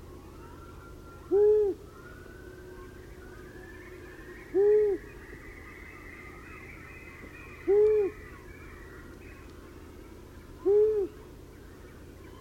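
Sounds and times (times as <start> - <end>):
long-eared owl hooting: 0.7 - 8.7, 10.6 - 11.2.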